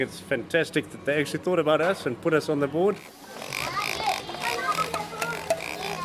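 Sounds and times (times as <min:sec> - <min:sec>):
speech: 0:00.0 - 0:03.7
squeaky electronic toy pig oinks: 0:03.4 - 0:06.0
toy soldier's sharp tinny drum taps: 0:04.3 - 0:06.0.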